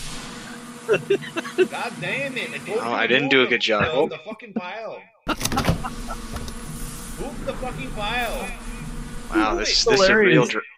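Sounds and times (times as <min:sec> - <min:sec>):
steady hum: 0:00.0 - 0:04.1, 0:05.3 - 0:10.6
laughter: 0:00.8 - 0:02.9, 0:03.6 - 0:06.6
speech: 0:00.9 - 0:06.5, 0:07.2 - 0:08.7, 0:09.3 - 0:10.7
office door being pushed closed: 0:05.3 - 0:06.6.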